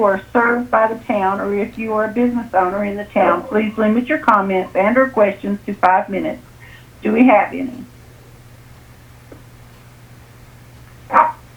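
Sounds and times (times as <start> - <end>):
speech: 0.0 - 7.9
faint steady low hum: 0.0 - 11.5
laughter: 0.4 - 7.6
dog barking: 1.4 - 5.4, 11.1 - 11.5.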